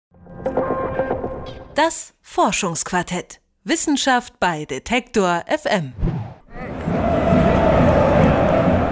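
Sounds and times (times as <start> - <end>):
speech: 1.8 - 6.0
football stadium crowd in Brazil cheering: 6.6 - 8.9.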